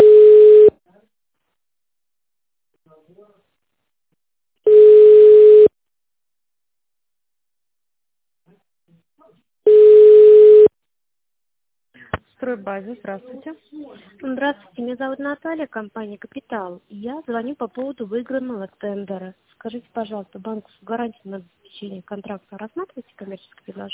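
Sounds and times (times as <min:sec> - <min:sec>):
telephone ringback tone while waiting on hold for an operator: 0:00.0 - 0:00.7, 0:04.7 - 0:05.7, 0:09.7 - 0:10.7
speech: 0:12.4 - 0:23.9.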